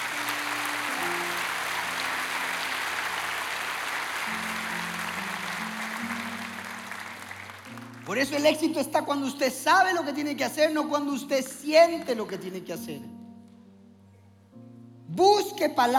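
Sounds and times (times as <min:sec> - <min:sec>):
large audience applauding: 0:00.0 - 0:08.4
soft sustained keyboard chords: 0:00.0 - 0:15.9
speech: 0:08.1 - 0:13.1, 0:15.2 - 0:15.9.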